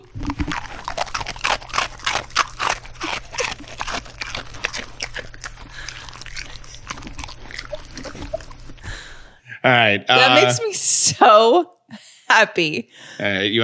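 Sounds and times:
dog crunching a crisp Biscoff cookie: 0:00.0 - 0:09.4
low steady hum: 0:00.0 - 0:10.7
speech: 0:09.6 - 0:11.8, 0:12.4 - 0:13.6.

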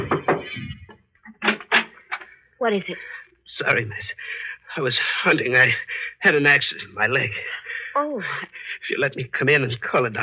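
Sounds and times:
knocking on the wooden door of a big house at night: 0:00.0 - 0:00.6
speech: 0:02.6 - 0:10.2.

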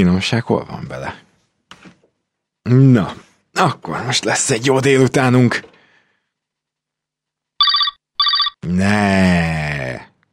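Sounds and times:
speech: 0:00.0 - 0:01.2, 0:02.7 - 0:05.7, 0:08.6 - 0:09.8
telephone with a trilling electronic ring: 0:07.6 - 0:08.6.

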